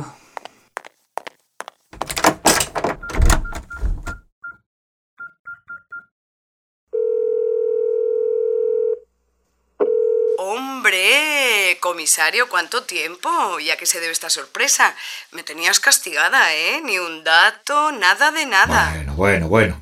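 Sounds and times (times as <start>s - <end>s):
footsteps: 0.3s - 3.0s
door being shut: 2.0s - 4.2s
phone dial tone: 7.0s - 9.0s, 9.8s - 10.4s
speech: 11.8s - 19.8s.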